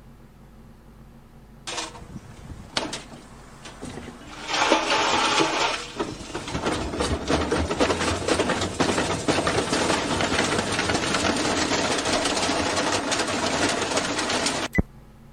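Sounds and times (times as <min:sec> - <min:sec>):
washing machine rattling and clattering as it shakes itself apart: 0:01.7 - 0:14.7.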